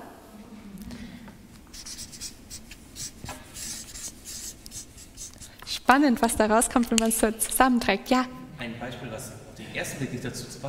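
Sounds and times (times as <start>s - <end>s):
pen or pencil writing by hand on paper: 1.7s - 5.8s
speech: 5.9s - 10.6s.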